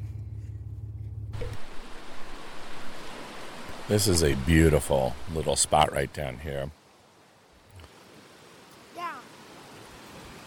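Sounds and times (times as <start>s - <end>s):
low engine-like hum: 0.0s - 3.1s
river water rushing: 1.4s - 10.4s
speech: 3.9s - 6.8s.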